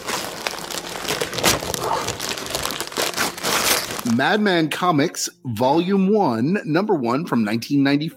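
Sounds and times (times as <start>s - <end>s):
gift wrapping paper crinkling and tearing around a comic book: 0.0s - 4.4s
speech: 4.1s - 8.1s.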